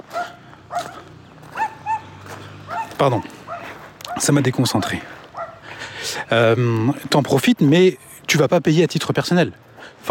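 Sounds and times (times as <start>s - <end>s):
dogs barking: 0.0s - 5.9s
speech: 3.0s - 3.4s, 4.2s - 5.2s, 6.0s - 10.0s.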